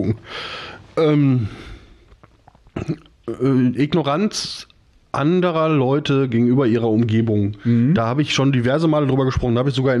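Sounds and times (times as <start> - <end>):
speech: 0.0 - 1.7, 2.8 - 9.9
quiet mouth clicks: 2.1 - 3.3
deep voiced burp: 2.4 - 3.5.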